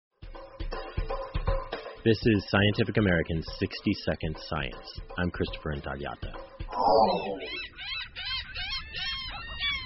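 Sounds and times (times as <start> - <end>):
speech: 2.0 - 7.9
flock of hungry gulls calling at the beach: 6.7 - 9.8.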